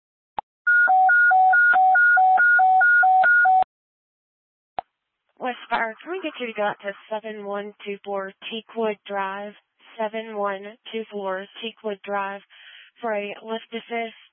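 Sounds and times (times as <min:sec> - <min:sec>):
fire dispatch paging tones: 0:00.7 - 0:03.7
speech: 0:05.9 - 0:14.3.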